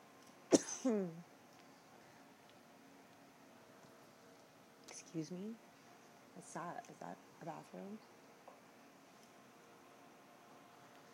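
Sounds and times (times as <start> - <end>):
person coughing with throaty rasp: 0.5 - 1.2
speech: 0.8 - 1.3, 5.2 - 5.7, 6.4 - 8.1.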